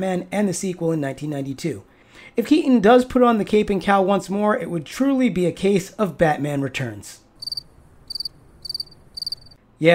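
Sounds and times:
speech: 0:00.0 - 0:07.2, 0:09.8 - 0:09.9
high trilling cricket chirps: 0:07.4 - 0:09.6.

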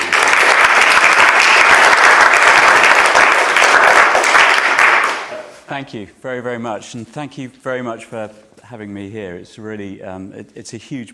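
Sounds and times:
large audience applause: 0:00.0 - 0:05.6
speech: 0:05.8 - 0:11.1.

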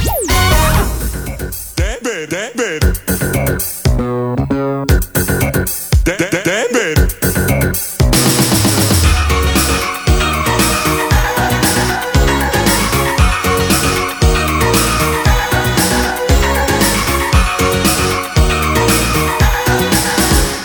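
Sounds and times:
playful sliding cartoon sound effects: 0:00.0 - 0:01.6
bouncy Italian-language pop theme song with full band backing: 0:00.0 - 0:04.1, 0:04.9 - 0:20.6.

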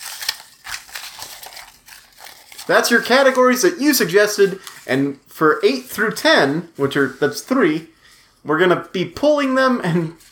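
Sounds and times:
paper rustling in a bowl: 0:00.0 - 0:07.8, 0:09.9 - 0:10.3
speech: 0:02.7 - 0:10.3.

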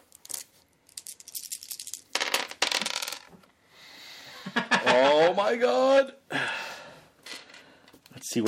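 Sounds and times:
five dice rolled across a hard surface for damage in a game: 0:00.0 - 0:03.4
speech: 0:05.4 - 0:06.5.

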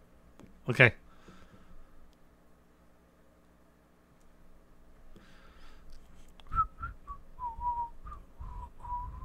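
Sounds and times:
low steady hum: 0:00.0 - 0:09.2
speech: 0:00.7 - 0:01.0
person whistling a wandering tune: 0:06.5 - 0:09.2.

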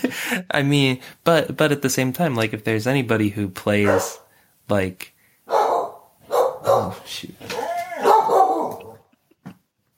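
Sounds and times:
speech: 0:00.1 - 0:05.6, 0:06.6 - 0:07.6
dog barking: 0:03.8 - 0:04.3, 0:05.5 - 0:07.0, 0:07.6 - 0:09.0
laughter: 0:07.5 - 0:08.2.

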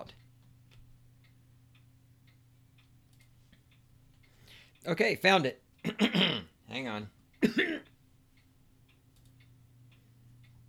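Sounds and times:
speech: 0:04.8 - 0:07.9
person clearing throat with a cough-like burst: 0:05.8 - 0:06.5, 0:07.4 - 0:07.9.

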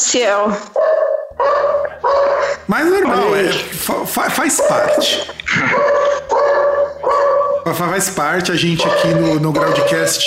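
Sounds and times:
speech: 0:00.1 - 0:01.6, 0:02.7 - 0:06.0, 0:07.6 - 0:10.2
dog barking: 0:00.8 - 0:03.3, 0:04.6 - 0:10.2.

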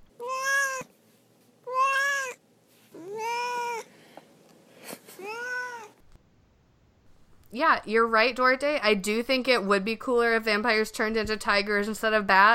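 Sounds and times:
male house cat meowing: 0:00.2 - 0:00.9, 0:01.7 - 0:02.4, 0:03.0 - 0:03.9, 0:05.2 - 0:06.0
speech: 0:07.5 - 0:12.5.

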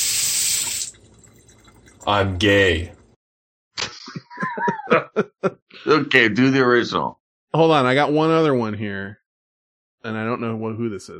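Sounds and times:
water running from a tap: 0:00.0 - 0:03.2
speech: 0:02.0 - 0:03.0, 0:05.2 - 0:09.2, 0:10.0 - 0:11.1
laughter: 0:03.8 - 0:05.6.

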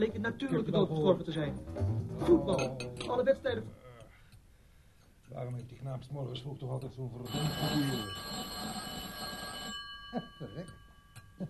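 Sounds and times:
speech: 0:00.0 - 0:03.8, 0:05.3 - 0:08.9, 0:10.1 - 0:10.8
telephone bell ringing: 0:07.3 - 0:11.4.

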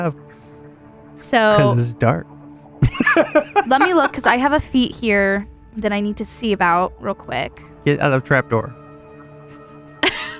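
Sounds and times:
speech: 0:00.0 - 0:00.3, 0:01.2 - 0:08.8
laughter: 0:01.5 - 0:02.2, 0:02.8 - 0:04.6, 0:10.0 - 0:10.3
person sneezing: 0:01.6 - 0:02.0.

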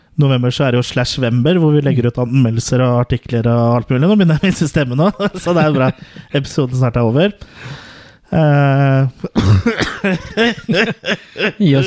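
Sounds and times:
speech: 0:00.2 - 0:11.8
laughter: 0:04.4 - 0:06.6, 0:09.4 - 0:11.8
person coughing harsh raspy coughs: 0:09.3 - 0:10.6.

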